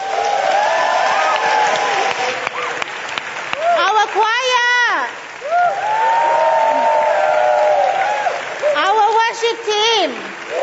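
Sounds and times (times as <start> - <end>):
people whooping and cheering: 0.0 - 2.9, 5.4 - 8.9, 10.5 - 10.6
large audience applauding loudly: 0.0 - 10.6.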